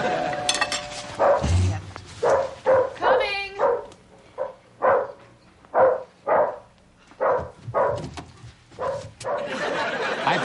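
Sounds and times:
laughter: 0:00.0 - 0:00.6, 0:09.4 - 0:10.4
dog barking: 0:01.2 - 0:01.5, 0:02.2 - 0:08.1, 0:08.8 - 0:09.5.

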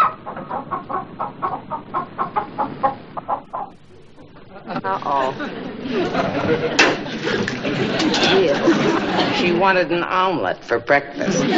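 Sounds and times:
hen clucking: 0:00.0 - 0:05.4
faint hiss: 0:00.0 - 0:11.5
laughter: 0:04.3 - 0:09.6, 0:11.2 - 0:11.5
speech: 0:04.9 - 0:07.4, 0:09.4 - 0:11.5.

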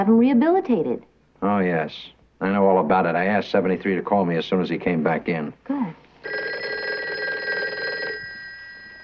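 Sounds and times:
speech: 0:00.0 - 0:06.5
telephone bell ringing in a buzzing trill: 0:06.2 - 0:09.0.

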